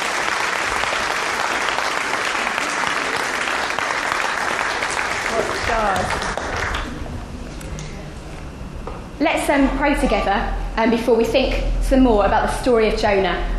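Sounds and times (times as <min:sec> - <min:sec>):
people cheering: 0:00.0 - 0:07.0
audience applause for the cast after a performance: 0:00.0 - 0:07.1
speech: 0:09.2 - 0:13.5.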